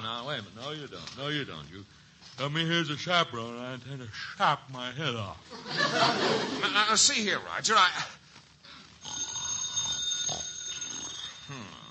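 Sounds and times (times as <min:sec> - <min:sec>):
speech: 0:00.3 - 0:08.2, 0:11.5 - 0:11.8
laughter: 0:05.5 - 0:06.8
telephone bell ringing with a metallic jangle: 0:09.0 - 0:11.8.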